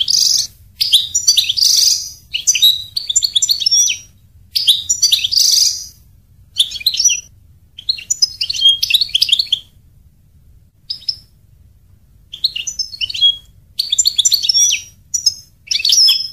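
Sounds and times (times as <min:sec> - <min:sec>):
European goldfinch twittering song: 0:00.0 - 0:06.0, 0:06.6 - 0:09.7, 0:10.9 - 0:11.3, 0:12.3 - 0:16.3
faint low background hum: 0:00.0 - 0:16.3.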